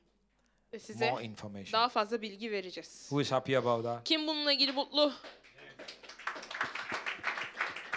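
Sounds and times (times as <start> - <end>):
speech: 0.7 - 5.5
small group clapping: 4.6 - 7.9.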